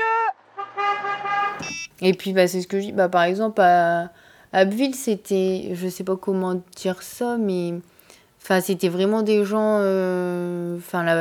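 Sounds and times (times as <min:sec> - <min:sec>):
car horn honking at a roundabout: 0:00.0 - 0:01.9
speech: 0:01.6 - 0:11.1.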